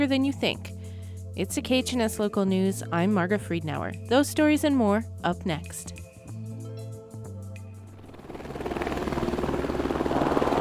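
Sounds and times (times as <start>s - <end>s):
speech: 0.0s - 0.8s, 1.4s - 6.0s
helicopter taking off from an airport: 7.8s - 10.5s.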